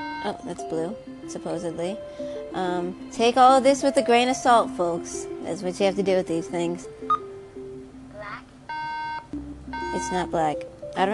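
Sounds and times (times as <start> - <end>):
electronic device beeping: 0.0 - 0.4, 7.1 - 7.3, 8.7 - 10.4
speech: 0.2 - 7.2, 9.9 - 11.1
low electronic tones: 8.7 - 10.7.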